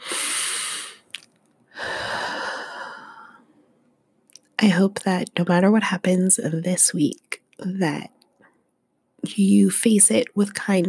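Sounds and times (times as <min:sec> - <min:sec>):
deep breath in: 0:01.7 - 0:03.5
speech: 0:04.6 - 0:08.2, 0:09.2 - 0:10.8.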